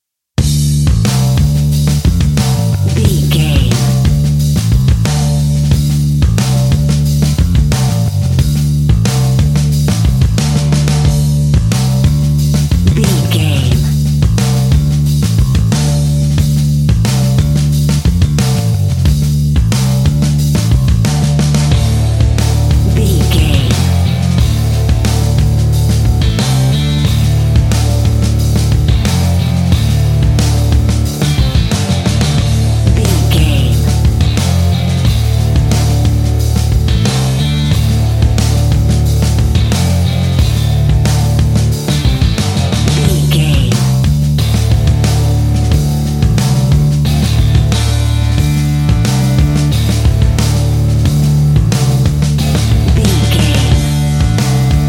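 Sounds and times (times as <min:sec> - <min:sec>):
vintage surf rock music: 0:00.4 - 0:54.8.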